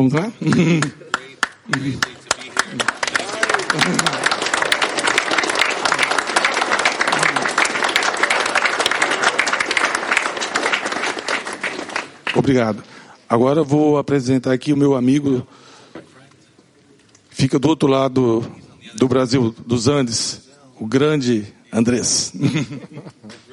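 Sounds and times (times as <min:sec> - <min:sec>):
speech: 0:00.0 - 0:01.1, 0:01.7 - 0:02.1, 0:03.7 - 0:04.2, 0:12.4 - 0:15.7, 0:17.4 - 0:23.4
laughter: 0:00.4 - 0:06.1, 0:07.0 - 0:08.0, 0:22.3 - 0:23.5
crowd applauding with dense overlapping claps: 0:00.8 - 0:12.7
crowd voices: 0:01.2 - 0:10.8.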